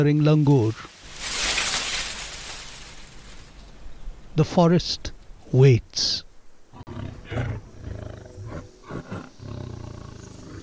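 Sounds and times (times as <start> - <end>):
speech: 0.0 - 0.9, 4.4 - 7.7
tiger growling low in a forest: 6.7 - 10.6.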